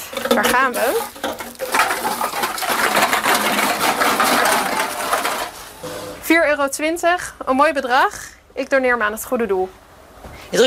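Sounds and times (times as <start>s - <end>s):
deposit cans and bottles clattering through a bulk return machine: 0.0s - 5.6s
speech: 0.1s - 1.3s, 2.0s - 3.6s, 6.3s - 9.8s.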